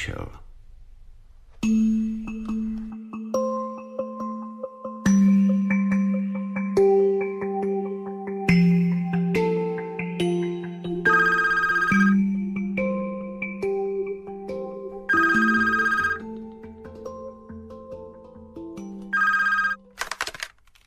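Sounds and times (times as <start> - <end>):
soft music: 1.6 - 20.1
telephone at a parish house ringing: 11.0 - 12.3, 15.1 - 16.3, 19.1 - 20.3.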